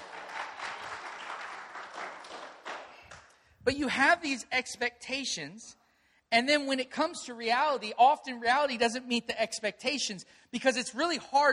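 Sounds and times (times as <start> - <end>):
audience applause: 0.0 - 3.2
speech: 3.6 - 11.5.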